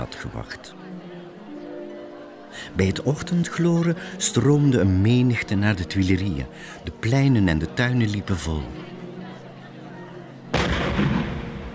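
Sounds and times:
speech: 0.2s - 1.2s, 2.5s - 8.9s
cannon shot: 10.5s - 11.7s.

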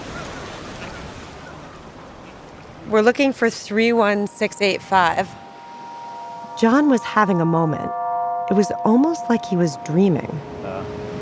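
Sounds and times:
waves washing onto a beach: 0.0s - 2.9s
speech: 2.8s - 5.4s, 6.6s - 10.6s.

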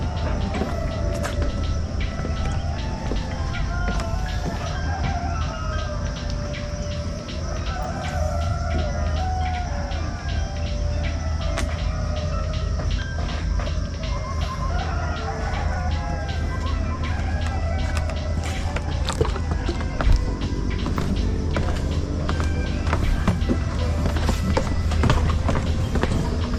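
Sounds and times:
scattered voices: 0.0s - 26.5s
steady low hum: 0.0s - 26.5s.

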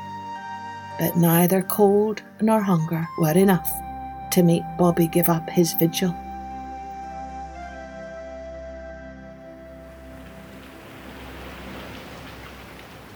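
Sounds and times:
speech: 1.0s - 6.2s
heavy rain pelting down at night: 9.4s - 13.1s.

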